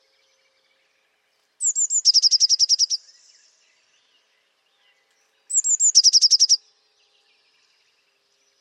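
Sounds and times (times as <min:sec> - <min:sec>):
Eurasian blue tit calling: 0:01.6 - 0:03.0, 0:05.5 - 0:06.6.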